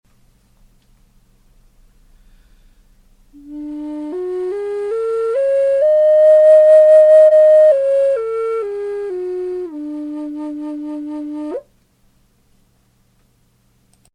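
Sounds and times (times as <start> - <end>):
native American flutes in D: 3.4 - 11.7.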